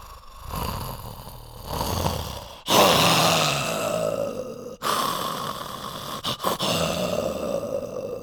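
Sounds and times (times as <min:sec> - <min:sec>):
puppeteer voicing tiger growls and roars: 0:00.0 - 0:08.2.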